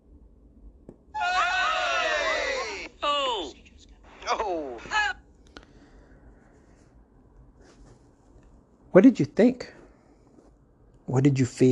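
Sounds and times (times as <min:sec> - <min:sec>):
person imitating a scream: 0:01.2 - 0:03.6, 0:04.2 - 0:05.2
short sharp cries: 0:01.2 - 0:03.6
speech: 0:09.0 - 0:09.8, 0:11.1 - 0:11.6.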